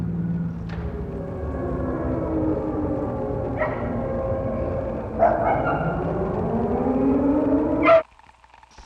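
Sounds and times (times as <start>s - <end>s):
air raid siren wailing: 0.0s - 8.0s.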